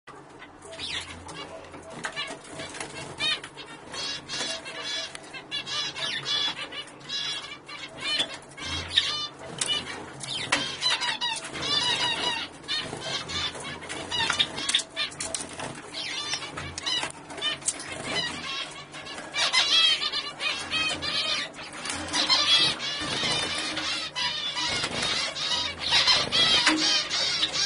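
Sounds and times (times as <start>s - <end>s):
Croatian finch sound: 0.7s - 27.6s.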